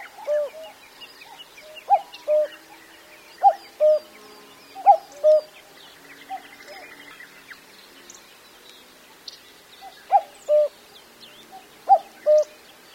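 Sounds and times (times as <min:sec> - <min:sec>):
common cuckoo calling: 0:00.0 - 0:02.7, 0:03.4 - 0:05.6, 0:09.8 - 0:10.8, 0:11.6 - 0:12.6.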